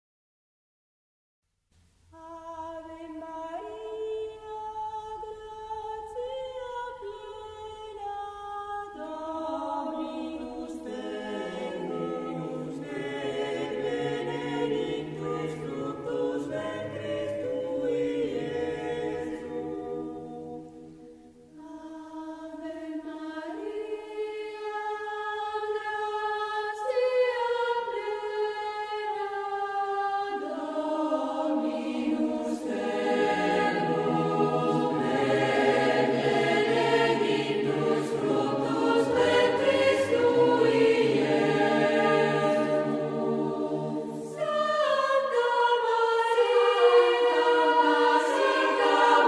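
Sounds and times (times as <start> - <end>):
four voices singing: 2.2 - 49.2.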